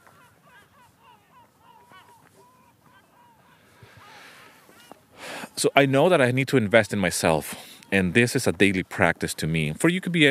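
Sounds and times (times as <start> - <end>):
flock of seagulls calling overhead: 0.0 - 9.0
laughter: 0.0 - 9.1
speech: 5.6 - 10.3.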